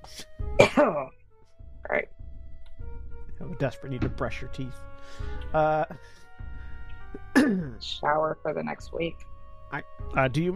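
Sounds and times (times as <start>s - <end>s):
person coughing and choking after swallowing sewage: 0.6s - 1.1s, 7.2s - 7.8s
speech: 0.8s - 1.2s, 1.9s - 2.1s, 3.4s - 6.2s, 7.4s - 10.5s.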